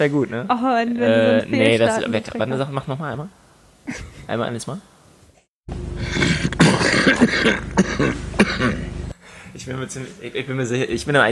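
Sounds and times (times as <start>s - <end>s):
speech: 0.0s - 4.9s, 7.1s - 8.9s, 9.5s - 11.3s
person imitating raspy coughing of an old man: 6.0s - 9.0s.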